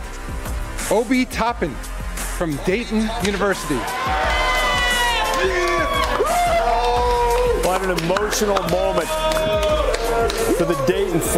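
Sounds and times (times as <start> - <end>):
speech: 0.9 - 4.2, 7.8 - 9.6, 10.2 - 11.3
crowd cheering after a draft pick: 2.8 - 11.3
applause after a draft pick: 4.0 - 11.2.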